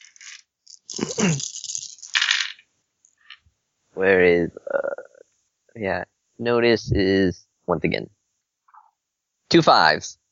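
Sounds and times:
playing cards being shuffled: 0.0s - 2.6s
speech: 1.0s - 1.5s, 4.0s - 5.0s, 5.8s - 8.2s, 9.5s - 10.2s.

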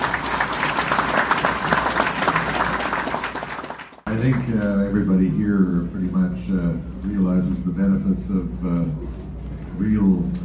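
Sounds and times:
audience applause: 0.0s - 4.6s
speech: 4.1s - 9.2s, 9.8s - 10.4s.

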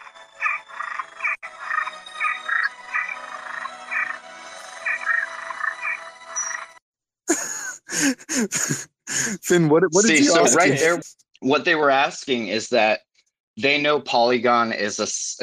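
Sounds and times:
toad croaking in short raspy calls: 0.4s - 4.2s, 4.8s - 6.0s
laughter: 7.3s - 11.1s
speech: 8.0s - 13.0s, 13.6s - 15.4s.

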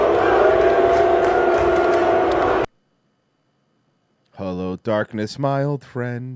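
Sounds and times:
stadium crowd noise heard from the field: 0.0s - 2.7s
speech: 4.8s - 6.3s.

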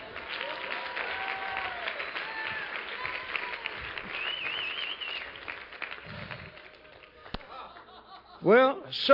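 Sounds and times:
audience applause: 0.0s - 7.9s
whoops and cheers: 0.4s - 5.2s
laughter: 7.2s - 8.6s
speech: 8.4s - 9.1s.

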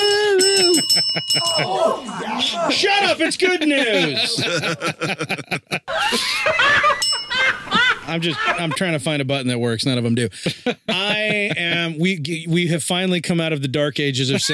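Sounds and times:
small bell ringing brightly: 0.0s - 2.4s, 7.0s - 7.6s
several people laughing: 0.0s - 9.0s, 10.4s - 12.0s, 14.3s - 14.5s
speech: 0.9s - 14.5s.

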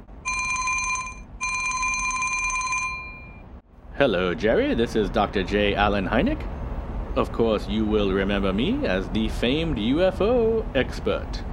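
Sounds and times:
low hum: 0.0s - 11.5s
old-fashioned telephone bell ringing: 0.2s - 3.5s
speech: 4.0s - 6.6s, 7.2s - 11.5s.

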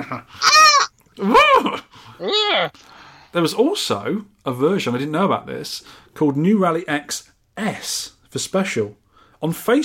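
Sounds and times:
sheep bleating: 0.4s - 0.9s
speech: 2.6s - 9.8s.

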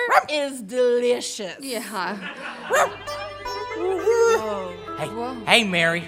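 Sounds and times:
dog barking: 0.0s - 0.3s, 2.6s - 3.0s
speech: 0.2s - 6.0s
laughter: 1.8s - 4.8s.

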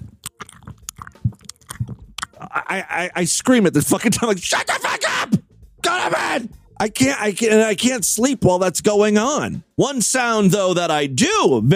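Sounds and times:
person imitating a dog licking and chewing: 0.0s - 2.8s
speech: 2.7s - 11.7s.

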